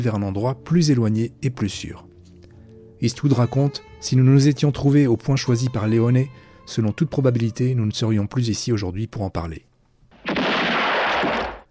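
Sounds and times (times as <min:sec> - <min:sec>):
speech: 0:00.0 - 0:02.1, 0:03.0 - 0:09.7
loud bridge explosion with roaring debris rumble: 0:10.2 - 0:11.6.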